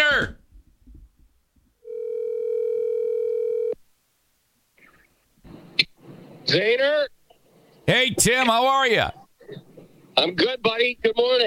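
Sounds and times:
steady electronic telephone ringing tone of a call waiting to be answered: 0:01.9 - 0:03.8
speech: 0:06.5 - 0:07.2, 0:07.9 - 0:09.6, 0:10.2 - 0:11.4.

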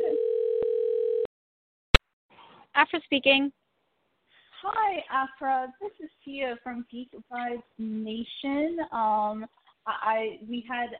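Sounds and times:
telephone ringback tone while a call is dialed: 0:00.0 - 0:01.3
speech: 0:02.8 - 0:03.6, 0:04.6 - 0:10.9.

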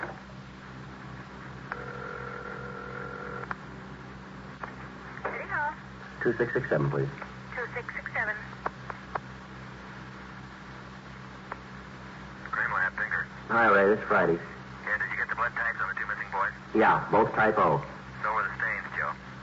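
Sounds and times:
low hum: 0:00.0 - 0:19.4
telephone dial tone in a hall: 0:01.7 - 0:03.5
speech: 0:06.2 - 0:07.3, 0:14.1 - 0:14.5, 0:16.8 - 0:17.9.

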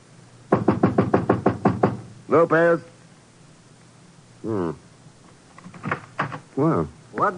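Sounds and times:
firm knocks on an apartment door: 0:00.5 - 0:02.1
speech: 0:02.3 - 0:02.9, 0:04.4 - 0:04.8, 0:06.6 - 0:07.3.

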